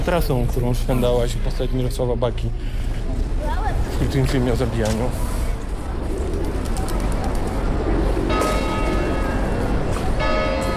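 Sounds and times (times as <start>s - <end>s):
outdoor town square noise: 0.0s - 10.7s
speech: 0.1s - 5.4s
faint murmuring voices: 0.6s - 10.7s
church bells ringing: 8.2s - 10.7s.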